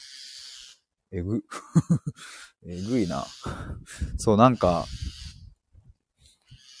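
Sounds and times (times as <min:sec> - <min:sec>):
loud harsh raspy bird call: 0:00.0 - 0:00.8, 0:02.7 - 0:03.6, 0:04.4 - 0:05.4, 0:06.4 - 0:06.7
speech: 0:01.1 - 0:05.2
laughter: 0:01.4 - 0:02.3.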